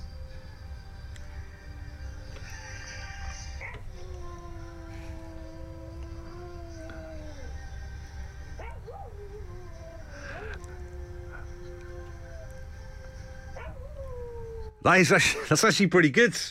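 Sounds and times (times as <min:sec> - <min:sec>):
steady low sound: 0:00.0 - 0:14.8
music: 0:00.0 - 0:15.6
dog howling along to music: 0:02.5 - 0:07.9, 0:08.5 - 0:15.0
speech: 0:14.8 - 0:16.4.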